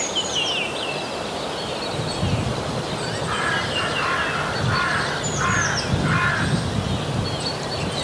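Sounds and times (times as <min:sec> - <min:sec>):
songbirds twittering: 0:00.0 - 0:08.0
hooded crows cawing: 0:03.3 - 0:06.5.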